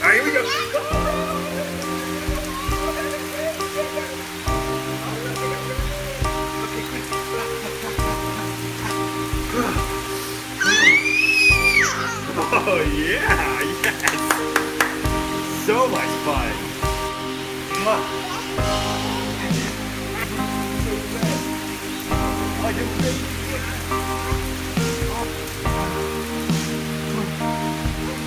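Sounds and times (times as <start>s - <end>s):
laughter: 0.0s - 24.1s
music with changing chords: 0.0s - 28.2s
steady rain pattering on a surface: 0.0s - 28.2s
rising whistle-like vocal sweep: 10.6s - 12.2s.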